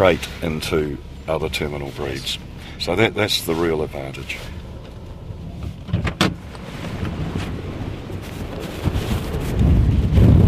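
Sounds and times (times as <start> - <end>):
speech: 0.0 - 4.6
gale force wind buffeting the microphone: 5.2 - 10.4.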